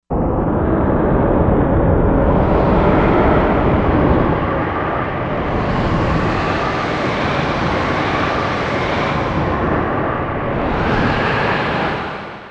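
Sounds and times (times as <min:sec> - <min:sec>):
storm: 0:00.1 - 0:12.4.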